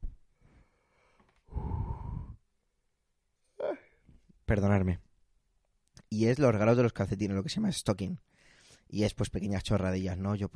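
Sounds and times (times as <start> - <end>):
sharp exhale: 0.5 - 2.4
person yawning: 1.5 - 2.4, 3.6 - 3.9
speech: 4.5 - 5.1, 6.1 - 8.3, 8.9 - 10.5.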